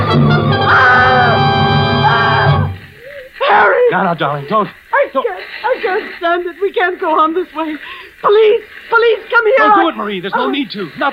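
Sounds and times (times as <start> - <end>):
woman shrieking: 0.6 - 4.0, 8.9 - 10.6
speech: 4.0 - 11.1.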